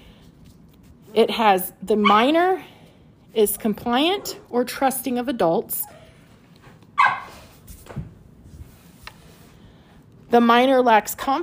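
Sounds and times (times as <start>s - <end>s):
speech: 1.1s - 2.7s, 3.3s - 6.0s, 10.3s - 11.4s
faint higher dog yelp: 2.0s - 2.3s, 7.0s - 7.4s
dog barking: 7.0s - 7.4s.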